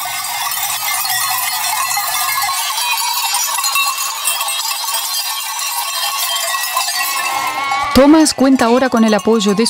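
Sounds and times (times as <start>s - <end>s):
sheep bells clanking on a steep ski slope: 0.0s - 9.6s
flock of sheep bleating moving up a steep ski slope: 7.3s - 8.8s
speech: 8.0s - 9.6s.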